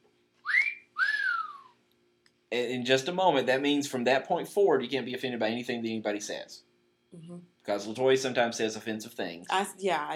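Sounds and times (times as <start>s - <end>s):
whistled notes: 0.4s - 1.8s
speech: 2.5s - 10.1s.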